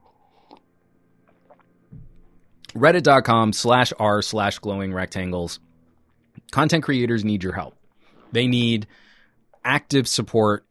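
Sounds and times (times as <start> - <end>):
person sipping water: 0.0 - 1.7
speech: 2.8 - 5.7, 6.5 - 10.6.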